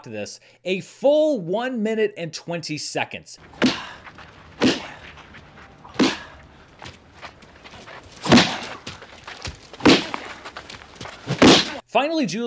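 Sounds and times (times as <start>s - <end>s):
speech: 0.0s - 3.9s, 11.9s - 12.4s
punch-like thuds: 3.5s - 5.3s, 5.9s - 11.8s.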